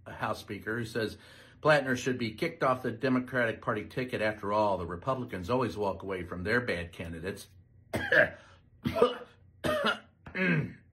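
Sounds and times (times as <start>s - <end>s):
speech: 0.2s - 9.2s, 10.4s - 10.8s
harsh throaty coughs: 8.0s - 10.9s.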